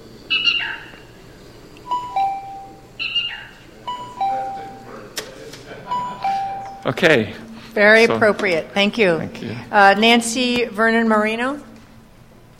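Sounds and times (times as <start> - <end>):
California black rail calling from a recording: 0.0 - 4.8
speech: 6.9 - 11.7.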